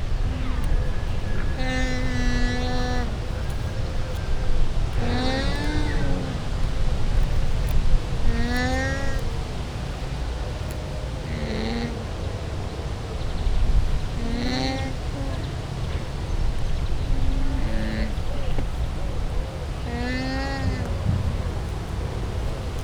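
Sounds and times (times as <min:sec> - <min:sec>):
llama bleating: 0:00.0 - 0:10.0, 0:10.6 - 0:12.1, 0:14.1 - 0:18.8, 0:19.8 - 0:21.5
low rumbling background noise at a zoo: 0:00.0 - 0:22.8.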